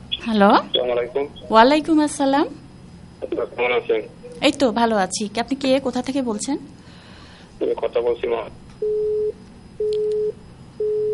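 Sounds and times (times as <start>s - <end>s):
speech: 0.2s - 2.6s, 3.2s - 6.8s, 7.6s - 9.1s
telephone busy tone after a call disconnects: 8.8s - 11.1s.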